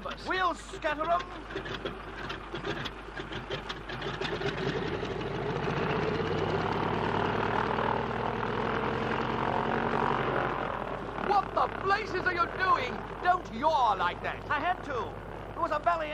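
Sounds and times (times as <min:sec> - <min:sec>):
cold aircraft engines sputtering and revving: 0:00.0 - 0:16.1
speech: 0:00.2 - 0:04.8, 0:11.8 - 0:16.1.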